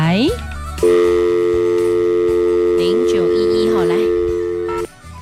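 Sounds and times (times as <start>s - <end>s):
speech: 0.2s - 0.5s
steady telephone line tone: 0.8s - 4.9s.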